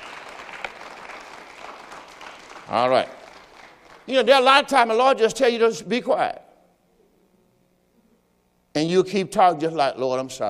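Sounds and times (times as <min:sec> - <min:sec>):
audience applause: 0:00.0 - 0:04.1
speech: 0:02.7 - 0:03.2, 0:04.1 - 0:06.4, 0:08.8 - 0:10.4.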